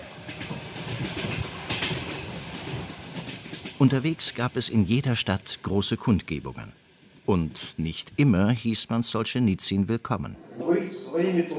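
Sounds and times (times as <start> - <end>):
Trans-Siberian Railway train wagons clattering over the rails: 0.0 - 6.5
speech: 3.8 - 10.5, 11.2 - 11.5.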